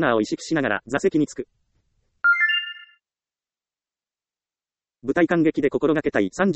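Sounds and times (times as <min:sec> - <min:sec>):
speech: 0:00.0 - 0:01.6, 0:05.0 - 0:06.5
electronic mobile phone ringtone: 0:02.2 - 0:03.0.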